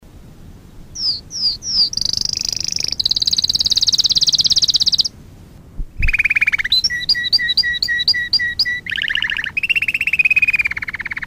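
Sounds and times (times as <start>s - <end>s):
Fife canary singing: 0.9s - 5.1s, 6.0s - 11.2s.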